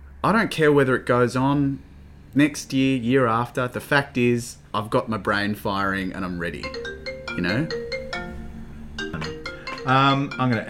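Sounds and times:
speech: 0:00.2 - 0:07.8, 0:09.2 - 0:10.6
mobile phone ringtone with electronic melody: 0:06.6 - 0:10.6.

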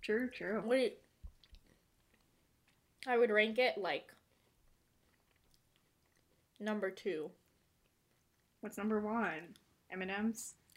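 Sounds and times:
speech: 0:00.0 - 0:01.1, 0:03.0 - 0:04.2, 0:06.6 - 0:07.4, 0:08.6 - 0:10.6
munching on a crisp chocolate wafer bar: 0:01.0 - 0:03.1, 0:04.1 - 0:06.7, 0:07.3 - 0:08.6.

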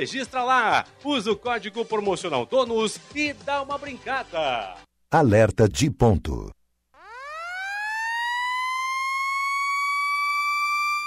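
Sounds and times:
speech: 0:00.0 - 0:06.6
electronic warning siren: 0:07.0 - 0:11.0.

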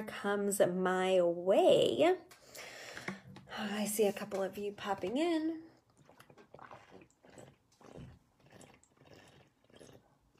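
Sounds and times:
speech: 0:00.0 - 0:02.7, 0:03.6 - 0:05.7
person sipping and gulping water: 0:05.7 - 0:10.3.

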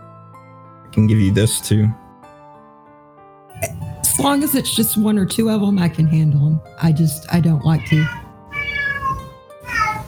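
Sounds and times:
speech: 0:00.9 - 0:02.0, 0:04.2 - 0:08.2
cat meowing: 0:07.7 - 0:10.0.

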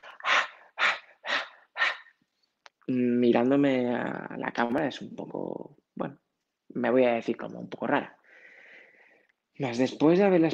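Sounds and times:
panting breaths through the mouth: 0:00.0 - 0:02.1
speech: 0:02.9 - 0:06.2, 0:06.8 - 0:08.2, 0:09.6 - 0:10.5.

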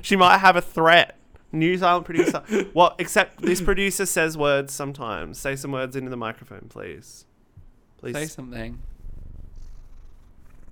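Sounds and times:
speech: 0:00.0 - 0:07.3, 0:08.0 - 0:08.9
laughter: 0:02.0 - 0:03.8
cat purring: 0:08.6 - 0:10.6.

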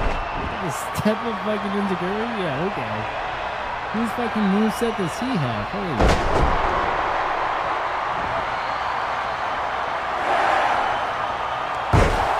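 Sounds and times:
crowd roar: 0:00.0 - 0:12.3
speech: 0:00.6 - 0:03.3, 0:03.9 - 0:06.7
wrestler slamming down onto a chair: 0:06.0 - 0:06.8, 0:11.9 - 0:12.3.

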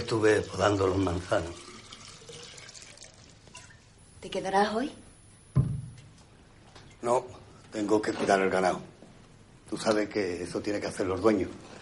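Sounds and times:
water poured from a pitcher into a clay jug: 0:00.0 - 0:03.9
speech: 0:00.1 - 0:01.7, 0:04.2 - 0:05.0, 0:07.0 - 0:08.9, 0:09.7 - 0:11.7.

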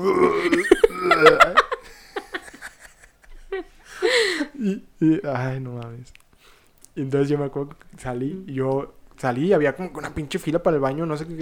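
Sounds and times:
speech: 0:00.0 - 0:01.3, 0:05.0 - 0:06.2, 0:07.0 - 0:11.4
voice mimicking someone vomiting with guttural heaves and gagging: 0:00.0 - 0:01.6
short breathy laughs: 0:00.1 - 0:04.7.

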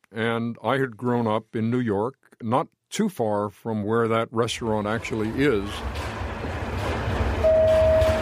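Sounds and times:
speech: 0:00.1 - 0:06.1
elevated train in the Bronx New York rumbling past: 0:05.0 - 0:08.2
elevated train sustained tonal whine or squeal: 0:07.4 - 0:08.2.

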